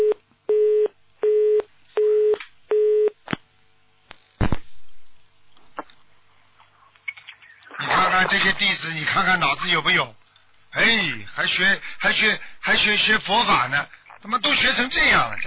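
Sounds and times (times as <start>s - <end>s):
telephone busy tone after a dropped call: 0.0s - 3.2s
speech: 8.2s - 10.2s, 10.8s - 15.4s.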